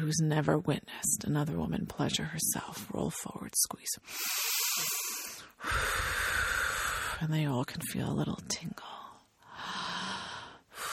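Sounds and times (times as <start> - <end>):
speech: 0.0 - 5.0, 7.2 - 9.0
heavy intense breathing: 4.0 - 7.2, 9.5 - 10.9.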